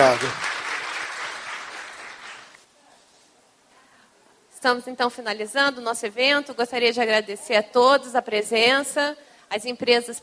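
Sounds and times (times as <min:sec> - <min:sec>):
speech: 0:00.0 - 0:00.5, 0:04.6 - 0:10.2
audience applause: 0:00.0 - 0:02.6.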